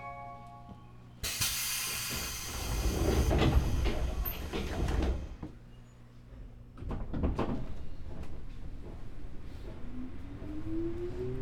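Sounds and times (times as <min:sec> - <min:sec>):
train pulling away with rumble and whine: 0:01.2 - 0:05.4, 0:09.4 - 0:11.3
train doors sliding shut with a hiss and thud: 0:01.3 - 0:05.5.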